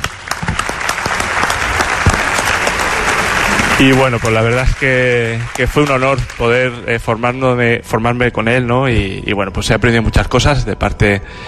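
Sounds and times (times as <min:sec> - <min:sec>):
audience applause in honor of a doctor: 0:00.0 - 0:06.9
speech: 0:03.8 - 0:11.4.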